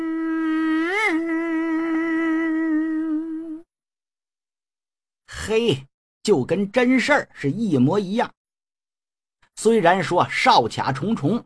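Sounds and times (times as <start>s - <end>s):
voice imitating a mosquito's buzz: 0.0s - 3.7s
speech: 5.5s - 8.4s, 9.6s - 11.4s.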